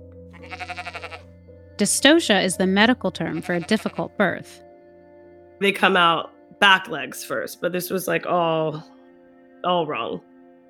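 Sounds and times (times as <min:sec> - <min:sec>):
pregnant exhausted sheep in dystocia bleating: 0:00.4 - 0:01.3, 0:03.2 - 0:04.2
speech: 0:01.8 - 0:04.6, 0:05.6 - 0:08.9, 0:09.6 - 0:10.3.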